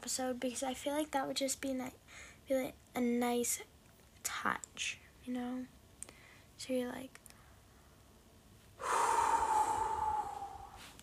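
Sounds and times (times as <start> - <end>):
speech: 0.1 - 5.8, 6.6 - 7.2
very loud long airy breath: 8.8 - 11.0.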